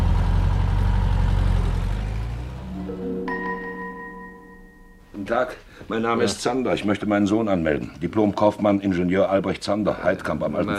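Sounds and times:
car engine rumbling as the car drives off: 0.0s - 3.0s
speech: 5.3s - 10.7s.

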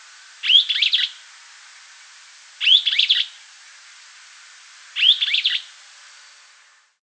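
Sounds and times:
Streaked flycatcher Myiodynastes maculatus giving harsh squeaky calls: 0.4s - 1.2s, 2.6s - 3.4s, 4.9s - 6.4s.

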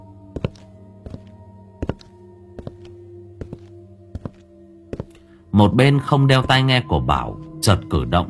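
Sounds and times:
slow heavy footsteps indoors: 0.0s - 5.3s
speech: 5.6s - 8.2s.

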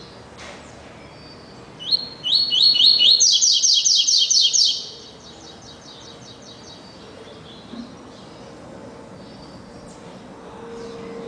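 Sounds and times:
double-collared seedeater singing upslurred whistles: 1.0s - 5.2s.

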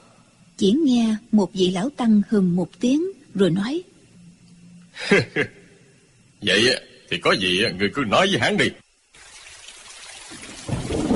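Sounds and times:
speech: 0.6s - 3.9s, 5.0s - 5.6s, 6.4s - 8.8s
laughter: 5.0s - 5.6s
rain falling during a storm: 9.1s - 11.1s
rumbling thunder during a storm: 10.5s - 11.1s.

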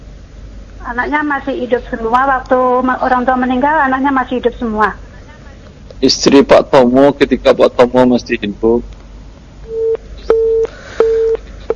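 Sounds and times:
speech: 0.8s - 5.0s, 6.0s - 8.9s
telephone busy tone after a call-in line disconnects: 9.7s - 11.4s.

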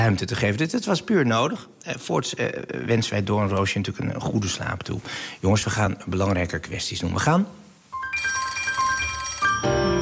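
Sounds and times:
speech: 0.0s - 7.6s
telephone ringing with a bright electronic ringtone for an outgoing call: 8.0s - 9.9s.

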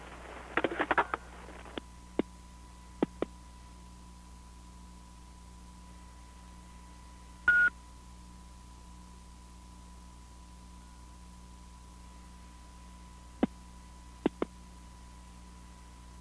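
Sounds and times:
steady low telephone line hum: 0.0s - 16.1s
telephone keypad dialing tones: 7.5s - 7.7s.

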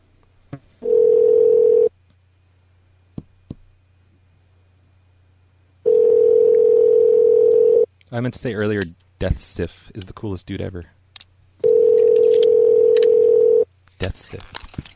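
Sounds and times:
telephone ringing tone on an outgoing call: 0.8s - 1.9s, 5.8s - 7.9s, 11.6s - 13.7s
speech: 8.1s - 11.0s, 14.0s - 14.9s.

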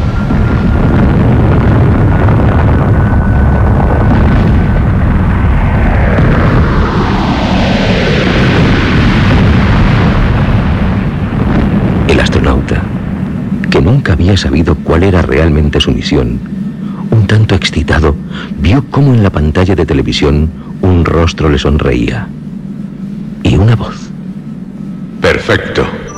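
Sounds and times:
science-fiction spaceship rumbling roar: 0.0s - 19.3s
sweeping tones: 12.8s - 26.1s
speech: 14.3s - 16.5s, 17.3s - 22.4s, 23.5s - 24.0s, 25.5s - 26.0s.

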